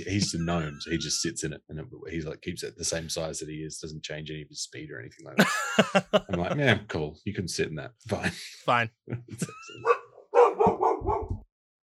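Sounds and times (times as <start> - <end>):
laughter: 0.0 - 1.5, 5.3 - 7.1, 8.1 - 9.9
speech: 0.0 - 9.9
dog barking: 9.8 - 11.4.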